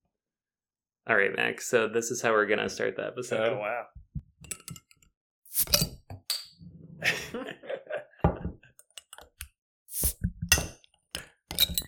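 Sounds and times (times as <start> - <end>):
speech: 1.1 - 4.0
drinking glasses clinking in a toast: 5.6 - 6.6, 11.5 - 11.8
laughter: 7.0 - 8.6.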